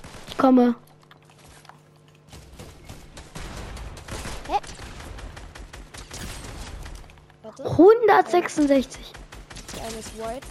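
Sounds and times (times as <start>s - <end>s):
rapid gunfire in a video game: 0.0s - 0.7s, 2.3s - 7.4s, 8.0s - 10.5s
speech: 0.4s - 0.8s, 8.1s - 9.2s, 9.8s - 10.5s.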